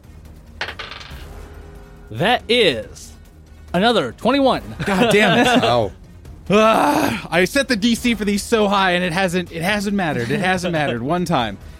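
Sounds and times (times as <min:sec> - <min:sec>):
dice clattering across a hard surface: 0:00.6 - 0:01.2
speech: 0:02.1 - 0:03.1, 0:03.7 - 0:11.7
laughter: 0:04.6 - 0:07.2, 0:09.9 - 0:11.1.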